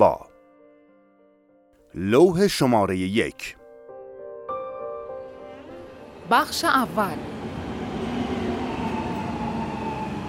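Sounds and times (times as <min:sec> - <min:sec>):
speech: 0:00.0 - 0:00.2, 0:02.0 - 0:03.6, 0:06.3 - 0:07.4
metro train arriving at the Enqelab-e Eslami Square station: 0:04.8 - 0:10.2.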